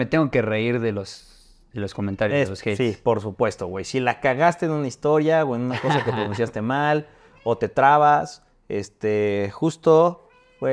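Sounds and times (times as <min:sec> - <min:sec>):
speech: 0:00.0 - 0:10.7
laughter: 0:05.7 - 0:06.6
cat meowing in drawn-out tonal cries: 0:07.2 - 0:07.7, 0:10.2 - 0:10.7.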